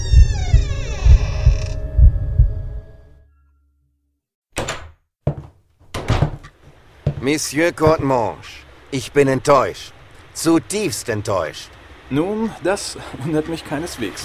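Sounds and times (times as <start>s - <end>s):
door creaking open after an old iron handle is pressed: 0.0s - 2.2s, 4.6s - 6.6s
dull rhythmic low thumps: 0.0s - 2.9s
sharp wooden knocks and clunks: 4.6s - 8.2s
speech: 7.2s - 14.2s.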